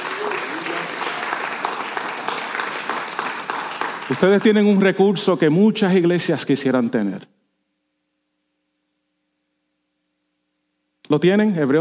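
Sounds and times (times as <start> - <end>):
audience applauding: 0.0 - 5.0
speech: 4.1 - 7.3, 11.1 - 11.7.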